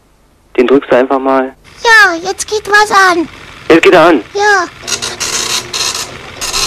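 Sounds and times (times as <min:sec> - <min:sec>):
speech: 0:00.6 - 0:05.2
printer print head making rasping scraping passes: 0:01.7 - 0:06.6.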